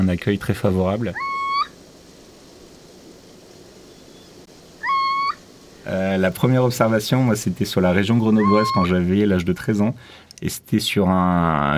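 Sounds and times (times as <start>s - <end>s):
speech: 0.0s - 1.3s, 5.8s - 11.7s
steady background hiss: 0.0s - 11.7s
little owl giving a flat whistled note in Bouches-du-Rhône farmland, France: 1.1s - 1.8s, 3.8s - 5.8s, 8.3s - 9.0s.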